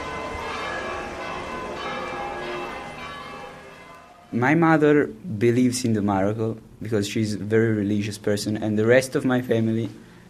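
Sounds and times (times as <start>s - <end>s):
church bells pealing: 0.0s - 4.9s
speech: 4.3s - 10.0s.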